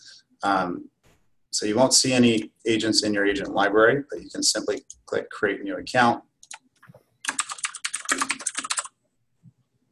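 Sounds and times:
speech: 0.4s - 0.9s, 1.5s - 6.3s
rapid typing on a computer keyboard: 6.4s - 9.0s.

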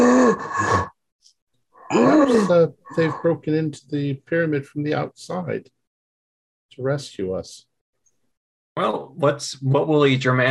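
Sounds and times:
heavy labored breath: 1.8s - 3.4s
deep vocal groan: 1.9s - 3.4s
speech: 1.9s - 5.8s, 6.7s - 7.7s, 8.8s - 10.4s.

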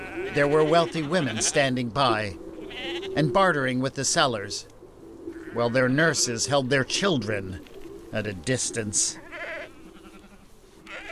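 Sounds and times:
low farmyard murmur: 0.0s - 1.7s, 2.6s - 3.3s, 5.3s - 6.3s, 9.0s - 11.1s
young lambs bleating in a pen: 0.0s - 1.7s, 2.6s - 3.2s, 5.3s - 5.8s, 9.0s - 11.1s
speech: 0.3s - 4.7s, 5.5s - 9.2s.

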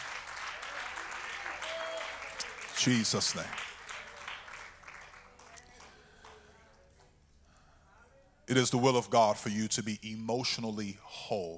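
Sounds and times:
congregation clapping hands during a church worship service: 0.0s - 6.6s
speech: 2.8s - 3.7s, 8.5s - 11.5s.

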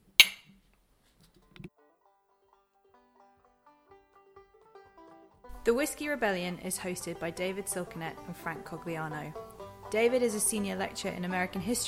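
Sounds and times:
glasses clinking in a toast: 0.0s - 0.5s
speech: 5.6s - 11.8s.

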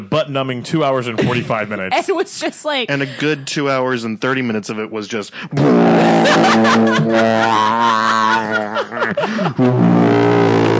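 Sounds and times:
speech: 0.0s - 10.7s
voice imitating a deep booming cinematic horn blast: 5.5s - 10.7s
laughter: 6.0s - 9.8s.

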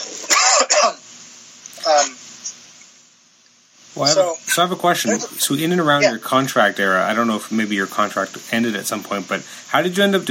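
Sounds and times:
person clearing throat: 0.2s - 1.0s
person coughing: 0.3s - 1.0s
speech: 0.6s - 1.0s, 1.8s - 2.2s, 4.0s - 10.2s.

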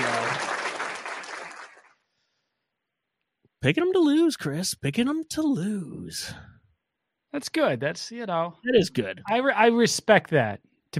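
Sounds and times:
crowd applause sound effect: 0.0s - 1.9s
speech: 3.6s - 6.5s, 7.3s - 10.9s.

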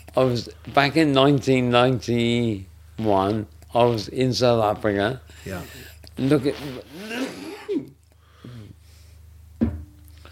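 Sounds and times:
low steady hum: 0.0s - 10.3s
speech: 0.2s - 7.9s
person clearing throat: 6.5s - 8.0s.

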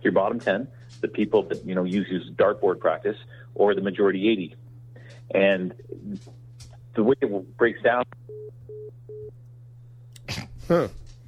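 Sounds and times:
speech: 0.0s - 4.6s, 5.3s - 6.4s, 7.0s - 9.4s, 10.7s - 11.0s
low steady hum: 0.0s - 11.2s
telephone busy tone beeps signalling a dropped call: 8.3s - 9.3s.

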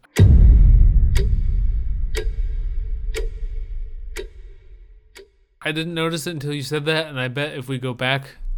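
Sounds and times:
clock ticking: 0.0s - 8.5s
deep rumbling low drone: 0.2s - 5.0s, 8.4s - 8.5s
speech: 5.7s - 8.4s.

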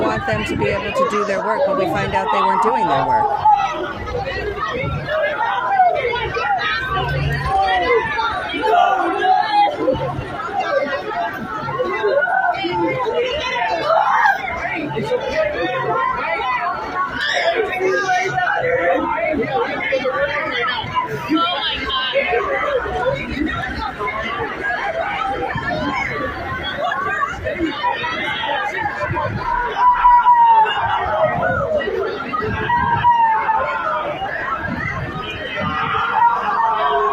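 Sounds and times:
crowd of parents screaming, wailing and shouting outside a school during a shooting: 0.0s - 37.1s
speech: 0.2s - 6.2s.

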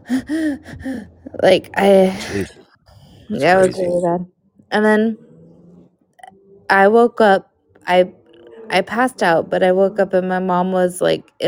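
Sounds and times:
person imitating gasping for air in a medical emergency: 0.0s - 1.2s, 2.0s - 2.6s
speech: 0.1s - 2.6s, 3.3s - 5.2s, 6.7s - 11.4s.

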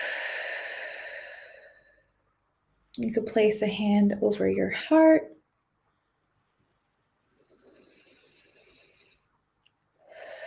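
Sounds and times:
slow deep breath during a guided breathing exercise: 0.0s - 2.2s, 7.2s - 10.4s
speech: 3.0s - 5.4s.

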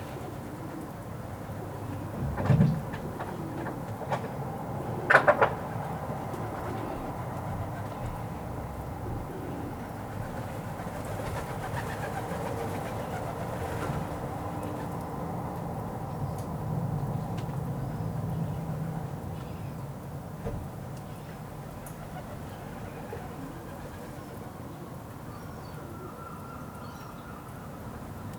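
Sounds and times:
pigeons cooing in a backyard: 0.0s - 15.2s, 21.8s - 26.4s
steady rumble of traffic or a passing train: 0.0s - 28.3s.

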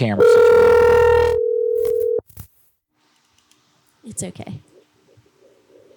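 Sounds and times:
speech: 0.0s - 0.4s, 4.2s - 4.7s
electronic phone call ringing tone: 0.2s - 2.2s.

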